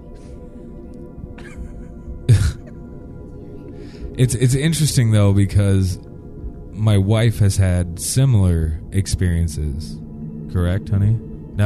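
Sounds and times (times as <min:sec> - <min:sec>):
person clearing throat: 0:01.4 - 0:02.8
speech: 0:04.1 - 0:06.1, 0:06.8 - 0:11.6.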